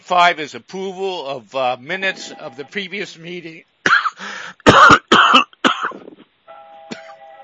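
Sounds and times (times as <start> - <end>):
speech: 0.1 - 5.4
person coughing: 3.9 - 6.2, 6.9 - 7.2
faint sustained ringing tone: 6.5 - 7.4.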